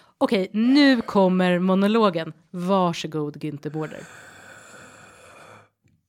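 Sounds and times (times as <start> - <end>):
speech: 0.2 - 4.3
deep inhaling breath: 3.8 - 5.8.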